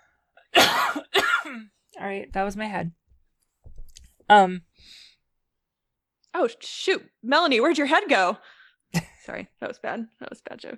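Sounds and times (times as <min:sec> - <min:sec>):
harsh coughs: 0:00.5 - 0:01.7
speech: 0:01.6 - 0:03.0, 0:04.3 - 0:05.1, 0:06.3 - 0:10.7.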